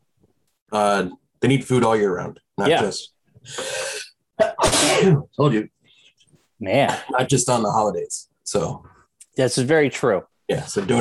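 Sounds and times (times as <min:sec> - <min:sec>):
speech: 0:00.7 - 0:03.8, 0:05.0 - 0:05.8, 0:06.6 - 0:10.9
sharp explosive sneeze: 0:03.6 - 0:05.3.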